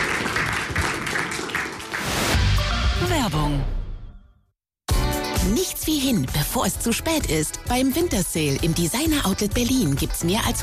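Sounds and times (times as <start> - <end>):
applause for two guests: 0.0 - 2.4
speech: 3.2 - 3.8, 5.4 - 10.6.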